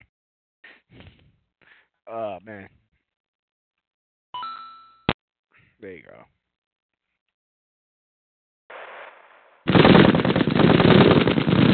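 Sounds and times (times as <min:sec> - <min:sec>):
speech: 0:02.1 - 0:02.8, 0:05.8 - 0:06.4
gunfire: 0:08.7 - 0:11.7.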